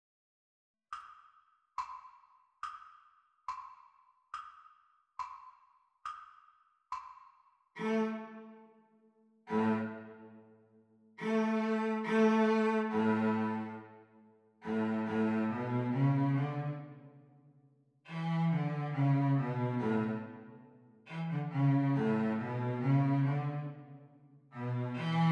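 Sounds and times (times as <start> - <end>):
cello duet playalong: 7.8 - 8.6, 9.5 - 10.4, 11.2 - 14.0, 14.6 - 17.1, 18.1 - 24.0, 24.6 - 25.3.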